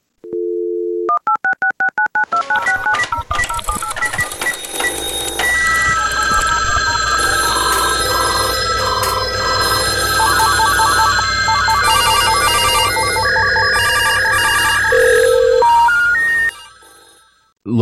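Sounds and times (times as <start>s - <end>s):
telephone dial tone: 0.2s - 17.2s
bright electronic telephone ringing and tones: 0.3s - 17.6s.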